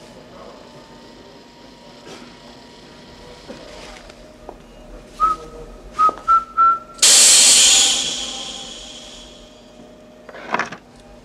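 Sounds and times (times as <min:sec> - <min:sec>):
person whistling a patriotic tune: 0:05.2 - 0:09.2
loud burst of hissing spray: 0:07.0 - 0:09.6.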